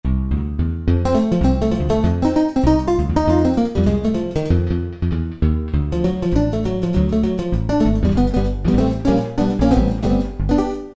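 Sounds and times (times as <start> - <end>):
picked guitar duo: 0.9 - 10.9.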